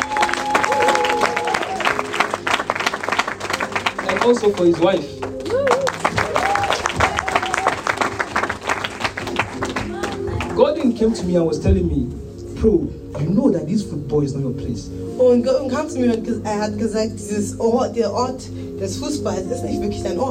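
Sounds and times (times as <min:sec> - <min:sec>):
audience applause: 0:00.0 - 0:10.8
speech: 0:04.2 - 0:05.3, 0:11.0 - 0:20.2.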